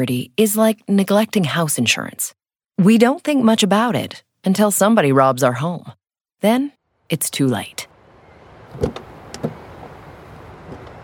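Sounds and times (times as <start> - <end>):
speech: 0.0 - 7.9, 8.7 - 9.1
low steady hum of a vehicle interior: 7.9 - 11.0
car door thuds: 8.7 - 10.0.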